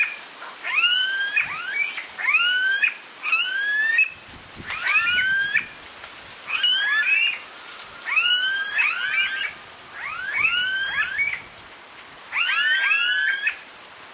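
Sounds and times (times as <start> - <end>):
Smooth-billed ani Crotophaga ani calling: 0.6 - 5.7, 6.5 - 7.4, 8.0 - 11.5, 12.3 - 13.6.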